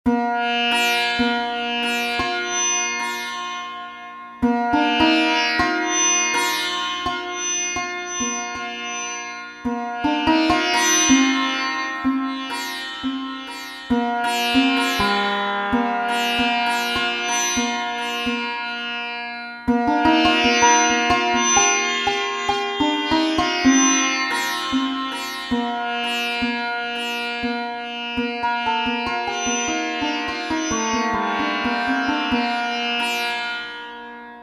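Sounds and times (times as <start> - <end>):
surbahar: 0.6 - 34.4.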